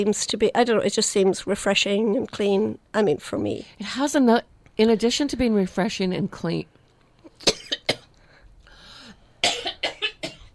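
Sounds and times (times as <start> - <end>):
speech: 0.0 - 6.8
harsh coughing: 7.4 - 8.1, 9.4 - 10.5
raspy indrawn breath: 8.2 - 9.4.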